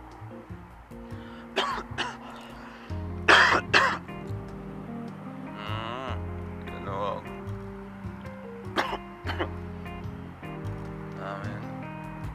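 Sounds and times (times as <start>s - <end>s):
steady music: 0.0s - 12.3s
person coughing harshly: 1.6s - 2.2s, 3.3s - 4.0s, 8.8s - 9.5s.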